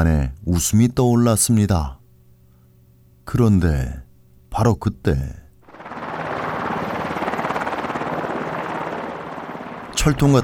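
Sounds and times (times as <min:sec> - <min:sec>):
speech: 0:00.0 - 0:02.0, 0:03.3 - 0:04.0, 0:04.6 - 0:05.4, 0:10.0 - 0:10.4
presidential helicopter rotor roar descending onto a schoolyard: 0:05.6 - 0:10.4.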